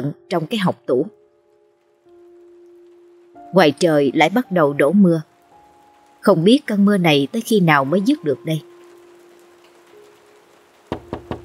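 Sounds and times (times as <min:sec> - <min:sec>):
speech: 0:00.0 - 0:01.2, 0:03.5 - 0:05.3, 0:06.2 - 0:08.7
firm knocking on a door: 0:10.9 - 0:11.4.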